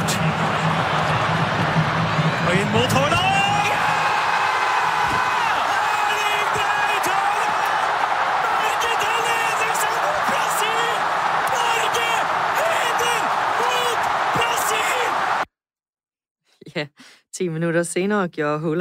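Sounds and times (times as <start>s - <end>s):
dense roaring football crowd cheering a goal: 0.0s - 15.5s
excited Norwegian football commentator shouting: 5.2s - 15.4s
speech: 17.4s - 18.7s.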